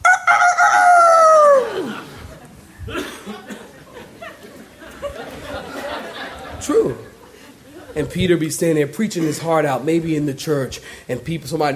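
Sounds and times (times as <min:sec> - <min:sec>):
voice imitating a rooster crow in mockery: 0:00.0 - 0:01.9
noise: 0:00.0 - 0:11.7
laughter: 0:01.5 - 0:08.2, 0:09.0 - 0:09.8
speech: 0:08.0 - 0:11.7.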